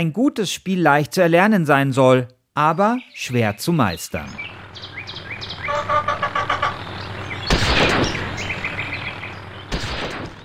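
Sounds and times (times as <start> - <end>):
speech: 0.0 - 4.9
busy arcade-style game backdrop: 2.6 - 10.4
video game moorhen chirps and squawks: 5.0 - 9.8
video game gunshot blasts shooting moorhens: 7.4 - 8.6, 9.7 - 10.4.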